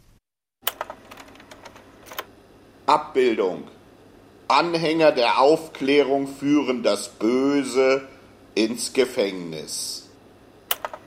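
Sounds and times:
slide projector clacking as the next slide is pushed in: 0.6 - 2.3, 10.7 - 11.0
speech: 2.9 - 3.8, 4.5 - 10.0.

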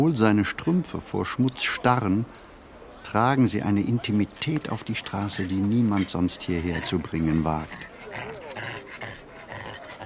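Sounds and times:
speech: 0.0 - 2.4, 3.0 - 9.2
young dog panting and huffing: 5.1 - 10.0.

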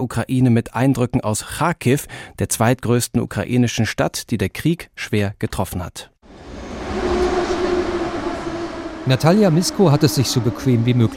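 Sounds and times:
speech: 0.0 - 6.1, 9.0 - 11.1
droning mechanical whine of a metro train: 6.3 - 11.1
metro train rumbling through an underground station in Kharkiv Ukraine: 6.3 - 11.1.

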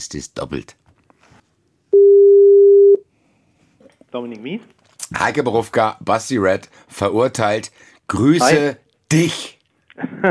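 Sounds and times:
speech: 0.0 - 0.8, 4.1 - 10.2
telephone tone while placing a call: 1.9 - 3.0.

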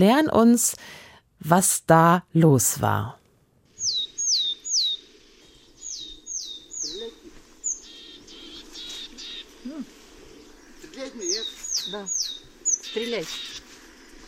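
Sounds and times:
speech: 0.0 - 3.2, 11.9 - 12.3, 12.9 - 13.5
soft scattered willow tit calls: 3.7 - 14.2
willow tit singing: 3.7 - 14.2.

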